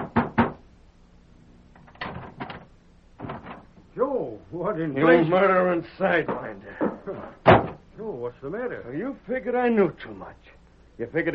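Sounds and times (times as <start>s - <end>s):
heavy fists pounding on a wooden door: 0.0s - 0.6s, 7.4s - 7.8s
speech: 4.0s - 11.3s.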